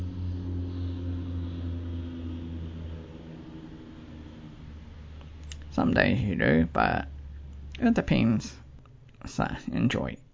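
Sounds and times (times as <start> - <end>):
aeroplanes flying overhead near an airport: 0.0 - 7.7
speech: 5.8 - 7.1, 7.8 - 8.6, 9.2 - 10.2.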